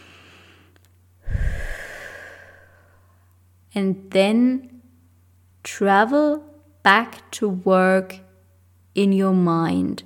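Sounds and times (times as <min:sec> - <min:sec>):
person breathing during a guided relaxation: 0:00.0 - 0:03.2
speech: 0:03.8 - 0:04.7, 0:05.7 - 0:08.2, 0:09.0 - 0:10.0.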